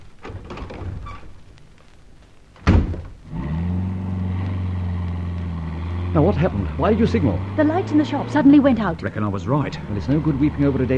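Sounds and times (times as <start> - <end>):
car engine starting up and running with a rumbling drone: 2.7 - 10.9
speech: 6.2 - 10.9.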